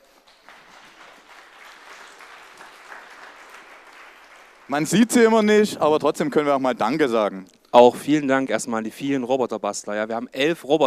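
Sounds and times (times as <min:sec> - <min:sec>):
audience applause: 0:00.0 - 0:05.5
speech: 0:04.7 - 0:10.8.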